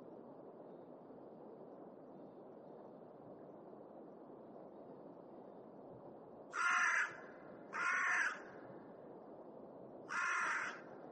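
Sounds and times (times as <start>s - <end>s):
crow cawing: 6.5s - 8.6s, 10.1s - 10.9s.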